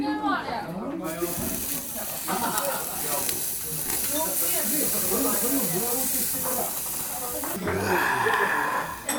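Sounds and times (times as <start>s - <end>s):
beef short rib sizzling on a grill net: 1.1s - 9.1s
voices chattering: 1.1s - 9.1s.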